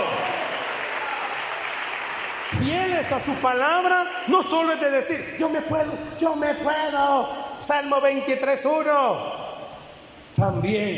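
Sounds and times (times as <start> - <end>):
audience applauding: 0.0 - 4.8
speech: 2.5 - 9.4, 10.4 - 10.9.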